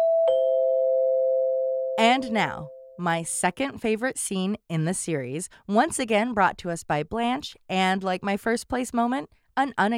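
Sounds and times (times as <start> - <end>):
doorbell ringing: 0.0 - 3.0
speech: 2.0 - 9.9.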